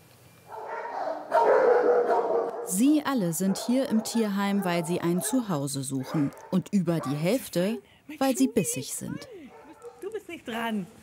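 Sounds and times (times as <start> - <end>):
dogs barking in an animal shelter: 0.5 - 7.8, 9.5 - 10.2
speech: 2.7 - 9.4, 10.4 - 11.0.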